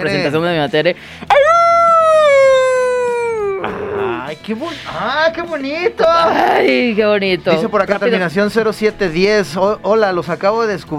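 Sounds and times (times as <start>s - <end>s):
speech: 0.0s - 1.4s, 4.3s - 10.9s
person imitating a howl: 1.3s - 4.3s.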